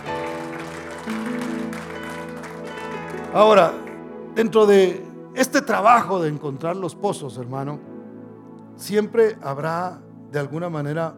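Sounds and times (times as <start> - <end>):
crowd applauding: 0.0 - 4.1
sustained keyboard chords: 0.0 - 11.1
speech: 3.3 - 3.8, 4.4 - 7.9, 8.8 - 11.1.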